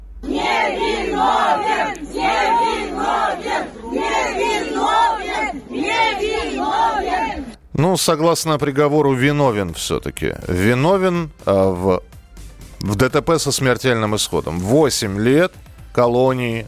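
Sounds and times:
large crowd of supporters chanting outside courthouse: 0:00.2 - 0:07.6
speech: 0:07.8 - 0:12.2, 0:12.8 - 0:16.6.

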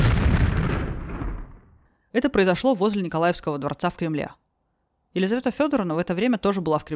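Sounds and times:
bomb explosion in a carriage near the Nikolaevsky Palace in the Moscow Kremlin: 0:00.0 - 0:01.8
speech: 0:02.1 - 0:04.4, 0:05.2 - 0:06.9.

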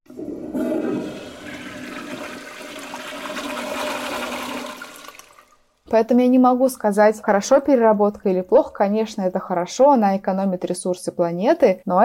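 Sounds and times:
toilet flushing with rushing swirling water: 0:00.1 - 0:05.8
speech: 0:05.9 - 0:12.0.

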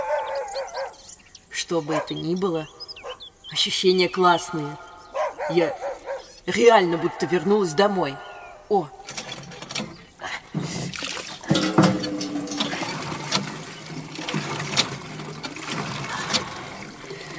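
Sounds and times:
speech: 0:00.5 - 0:02.8, 0:03.5 - 0:09.2
water gushing and splashing from a street pump: 0:10.6 - 0:17.3
clanking metallic mechanism of a street pump: 0:11.4 - 0:15.6.

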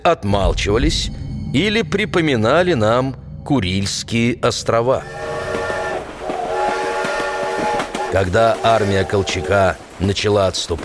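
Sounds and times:
speech: 0:00.0 - 0:05.4, 0:08.1 - 0:10.8
steam train whistle blowing a long steady tone: 0:05.0 - 0:08.8.

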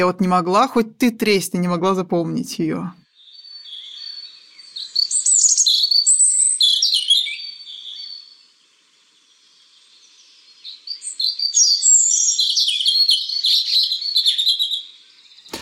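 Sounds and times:
speech: 0:00.0 - 0:03.0
European robin singing warbling trills: 0:02.6 - 0:08.4, 0:09.7 - 0:15.6.

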